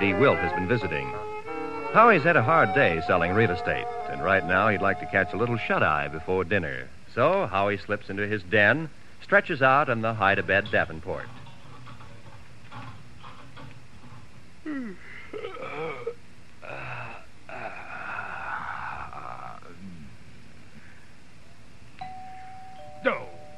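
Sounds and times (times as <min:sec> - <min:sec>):
voices: 0:00.0 - 0:01.3, 0:01.9 - 0:11.3
speech: 0:00.0 - 0:11.4, 0:14.6 - 0:15.9
doorbell ringing at a family home: 0:22.0 - 0:23.5.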